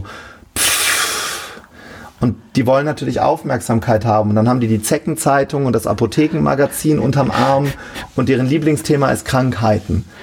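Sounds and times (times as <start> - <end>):
long loud exaggerated exhale: 0.0 - 2.1
speech: 2.2 - 10.2.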